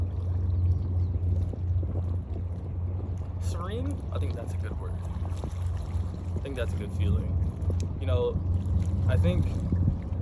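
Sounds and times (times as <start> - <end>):
steady low rumble: 0.0 - 10.2
water sloshing and lapping by a boat at an island in Japan: 0.0 - 10.2
speech: 3.5 - 5.8, 6.4 - 10.2.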